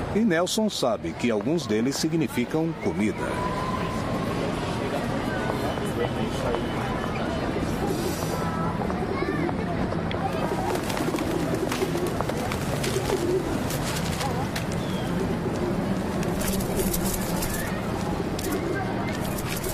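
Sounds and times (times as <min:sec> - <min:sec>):
dense busy outdoor city wash: 0:00.0 - 0:19.7
people's voices in a busy outdoor city: 0:00.0 - 0:19.7
speech: 0:00.2 - 0:03.7, 0:06.0 - 0:06.8
pigeons cooing: 0:10.3 - 0:19.7.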